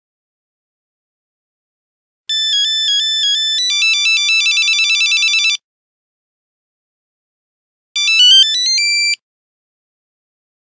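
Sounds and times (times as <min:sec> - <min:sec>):
Nokia 3210 phone buzzer ringtone: 0:02.3 - 0:05.6, 0:08.0 - 0:09.2.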